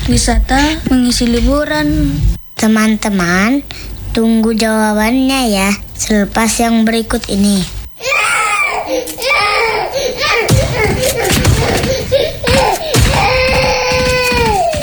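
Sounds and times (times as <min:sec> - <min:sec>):
speech: 0:00.1 - 0:07.8
child crying hard with sustained wailing and sobbing: 0:08.0 - 0:14.8.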